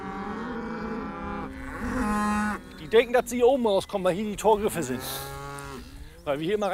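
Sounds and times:
cattle from a herd with a bull lowing moo: 0:00.0 - 0:03.0, 0:04.6 - 0:06.2
speech: 0:02.9 - 0:05.3, 0:06.3 - 0:06.7.

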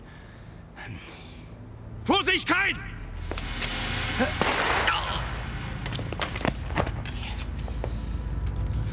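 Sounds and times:
speech: 0:00.9 - 0:01.2, 0:02.1 - 0:03.0, 0:04.2 - 0:04.8
steady low rumble: 0:02.9 - 0:08.9
gunshot: 0:04.2 - 0:05.5.

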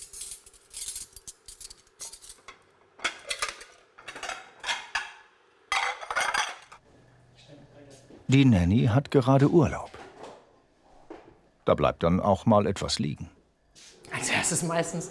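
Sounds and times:
deep and flat plates and cutlery clinking while set out on a table: 0:02.0 - 0:06.8
speech: 0:08.3 - 0:09.9, 0:11.7 - 0:13.4, 0:14.5 - 0:15.0.

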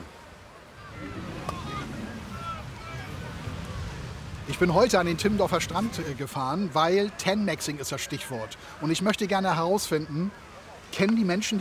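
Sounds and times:
low rolling surf rumble at Timmendorfer Strand: 0:00.0 - 0:11.5
wind buffeting the microphone on a beach at Timmendorfer Strand: 0:00.8 - 0:06.2
speech: 0:04.5 - 0:11.5.

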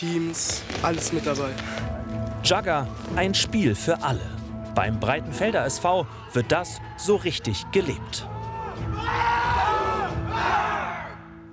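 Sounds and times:
speech: 0:00.0 - 0:09.4
group of Jugger players shouting a battle cry: 0:08.3 - 0:11.2.

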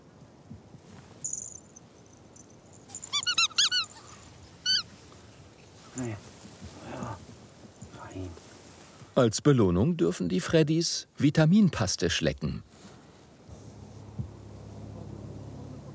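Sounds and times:
squeaky walrus toy squeezed to lure ferrets: 0:02.8 - 0:04.9
faint murmuring: 0:05.8 - 0:08.5
speech: 0:06.0 - 0:06.3, 0:09.2 - 0:12.7.

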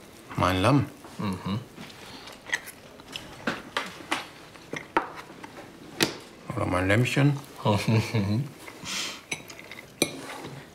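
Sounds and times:
speech: 0:00.4 - 0:01.7, 0:06.6 - 0:09.0
plate and cutlery clinking: 0:09.3 - 0:10.6.

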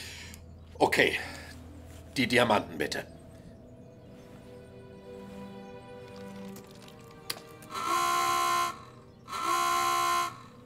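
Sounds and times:
speech: 0:01.0 - 0:01.4, 0:02.2 - 0:03.2
security alarm system buzzing: 0:07.7 - 0:10.5.

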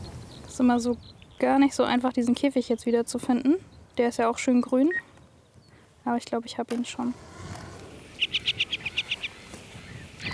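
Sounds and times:
female ground-nesting bird chirping as she flies off her nest: 0:00.0 - 0:05.9, 0:07.8 - 0:10.3
speech: 0:00.6 - 0:05.1, 0:06.0 - 0:07.5
faint single call of a female ground-nesting bird: 0:08.1 - 0:10.3.

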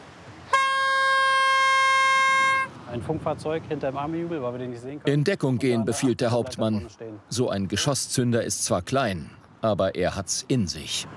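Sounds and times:
loud brassy warning horn blast: 0:00.5 - 0:02.8
speech: 0:02.9 - 0:11.1.

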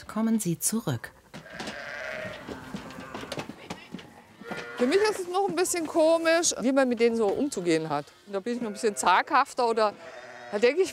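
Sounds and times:
speech: 0:00.0 - 0:01.2, 0:04.8 - 0:10.9
sheep bleating in a barn: 0:01.4 - 0:03.4, 0:04.4 - 0:05.2, 0:07.3 - 0:10.9
knocks in a barn: 0:01.4 - 0:06.1.

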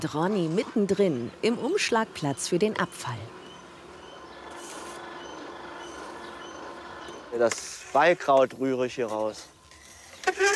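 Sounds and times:
speech: 0:00.0 - 0:03.4, 0:07.3 - 0:09.5
train rolling past on a railway in the Börde near Magdeburg, Germany: 0:00.4 - 0:07.4.

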